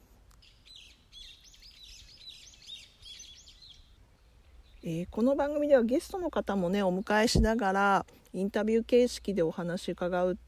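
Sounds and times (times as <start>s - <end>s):
low hum of outdoor ambience: 0.0s - 10.4s
small birds chirping and twittering in a park: 0.3s - 7.6s
speech: 4.8s - 10.4s.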